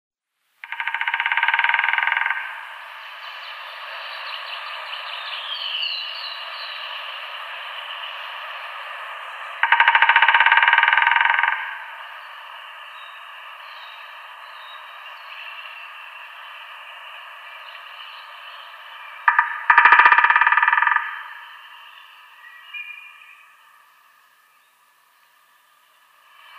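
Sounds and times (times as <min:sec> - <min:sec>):
White-backed Woodpecker drumming: 0:00.6 - 0:05.6, 0:06.8 - 0:16.7, 0:17.5 - 0:22.3.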